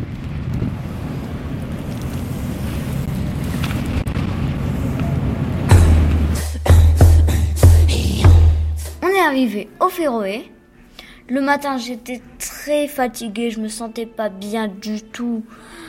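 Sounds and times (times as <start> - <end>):
strong wind gusts buffeting the microphone: 0.0 - 6.4
strong wind on a boat: 0.0 - 9.2
boat engine drone: 0.9 - 9.0
deep low thumping: 5.7 - 9.0
speech: 9.3 - 10.6, 11.3 - 15.8.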